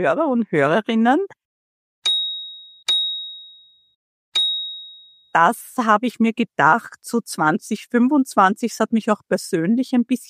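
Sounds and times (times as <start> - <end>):
speech: 0.0 - 1.4, 5.3 - 10.2
high-pitched chime strikes: 2.1 - 5.3.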